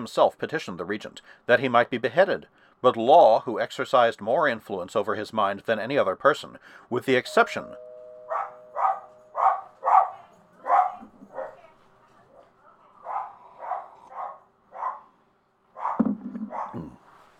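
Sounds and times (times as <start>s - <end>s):
speech: 0.0s - 7.9s
dog barking in short, sharp bursts: 8.3s - 11.7s, 13.0s - 15.2s, 15.8s - 17.0s.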